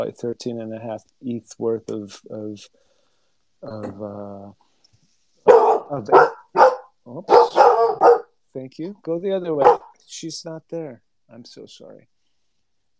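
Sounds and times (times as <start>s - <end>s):
speech: 0.0s - 2.9s, 3.6s - 4.6s, 5.4s - 7.7s, 8.5s - 12.1s
dog barking: 5.5s - 8.3s, 9.6s - 10.0s.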